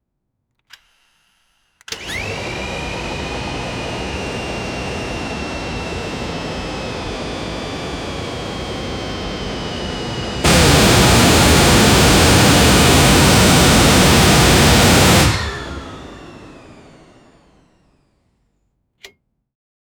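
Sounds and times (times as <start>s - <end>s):
aircraft jet engine ignition: 1.9s - 17.7s.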